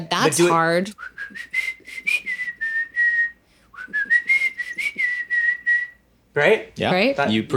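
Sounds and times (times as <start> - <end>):
speech: 0.0 - 1.7, 6.4 - 7.5
person whistling a melodic tune: 1.0 - 6.0.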